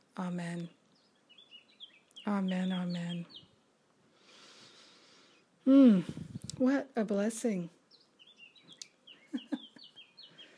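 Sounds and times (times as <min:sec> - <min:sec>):
speech: 0:00.2 - 0:00.8, 0:02.2 - 0:03.5, 0:05.6 - 0:07.8
several birds chirping and singing at dawn: 0:00.2 - 0:03.8, 0:07.8 - 0:10.5
dull low thumps: 0:05.9 - 0:06.6.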